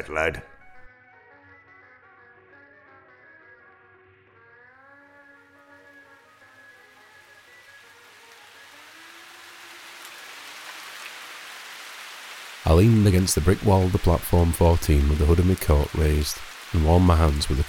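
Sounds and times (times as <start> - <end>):
speech: 0.0 - 0.5, 12.7 - 17.6
heavy rain pouring onto concrete: 5.8 - 17.6.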